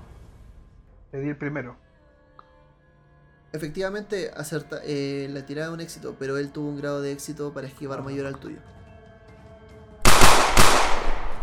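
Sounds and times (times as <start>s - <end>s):
speech: 1.1s - 1.9s, 3.5s - 8.8s
gunshots with echo: 10.0s - 11.4s.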